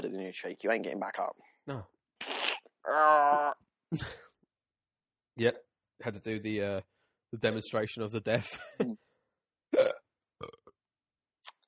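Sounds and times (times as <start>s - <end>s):
speech: 0.0s - 4.3s, 5.4s - 9.1s
loud throaty hiccup like a burp: 9.7s - 10.7s
short gulping sounds: 9.8s - 10.7s.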